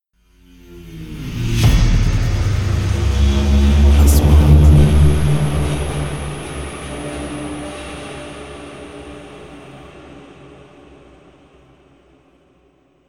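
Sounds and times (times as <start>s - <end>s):
3D trailer sound effects: 0.5s - 10.2s.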